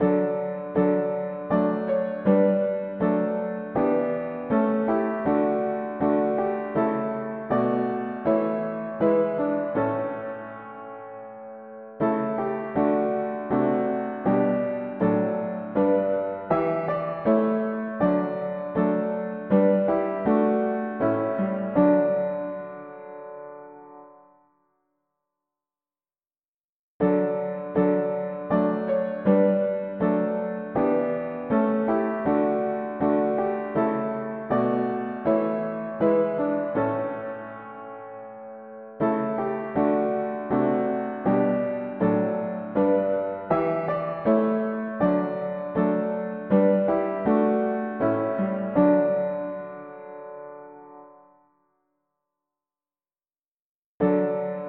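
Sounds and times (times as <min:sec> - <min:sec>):
mono piano playing hymns: 0:00.0 - 0:24.4, 0:27.0 - 0:51.4, 0:54.0 - 0:54.6.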